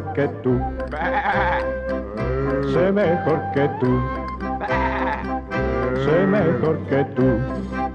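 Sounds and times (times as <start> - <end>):
speech: 0.2 - 1.8, 2.6 - 4.7, 6.0 - 7.8
sheep bleating: 1.0 - 2.8, 4.6 - 6.8.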